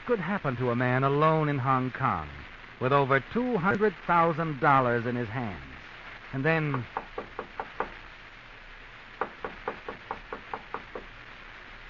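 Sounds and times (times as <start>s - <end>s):
speech: 0.1s - 5.7s, 6.3s - 7.4s
knocking on a door: 6.7s - 8.0s, 9.2s - 11.1s.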